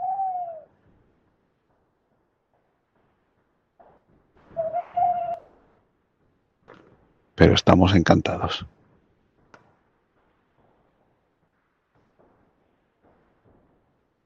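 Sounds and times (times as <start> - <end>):
owl hooting at night: 0.0 - 0.7, 4.6 - 5.4
speech: 7.4 - 8.8.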